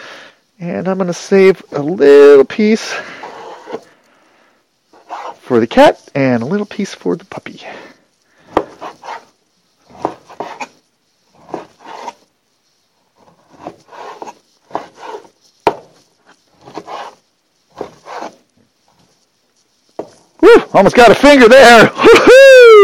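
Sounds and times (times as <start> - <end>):
speech: 0.6 - 3.8, 5.5 - 7.9, 20.7 - 22.8
knife cutting meat into thin pieces: 8.5 - 12.3, 13.2 - 15.4, 16.0 - 18.4.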